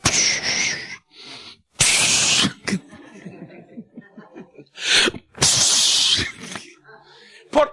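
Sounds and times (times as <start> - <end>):
person imitating a snake's hiss: 0.0 - 2.8, 4.8 - 6.6
quiet breathing: 0.5 - 1.7, 6.9 - 7.6
laughter: 2.6 - 4.8.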